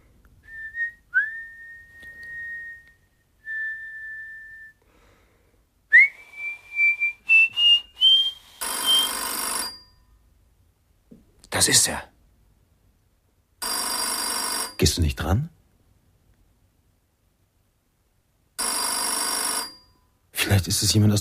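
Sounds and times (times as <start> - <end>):
man lying on a bed softly whistling a melody: 0.4 - 4.8, 5.9 - 9.2
speech: 11.6 - 12.1, 14.8 - 15.6, 20.6 - 21.1.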